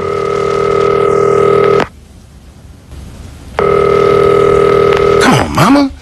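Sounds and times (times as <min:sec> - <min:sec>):
telephone ringing through the earpiece: 0:00.0 - 0:01.9, 0:03.6 - 0:05.2.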